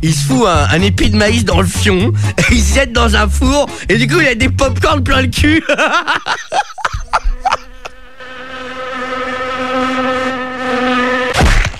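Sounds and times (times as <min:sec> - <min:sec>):
speech: 0:00.0 - 0:06.7
laughter: 0:02.1 - 0:02.9, 0:05.4 - 0:08.0
fly buzzing: 0:06.5 - 0:11.7.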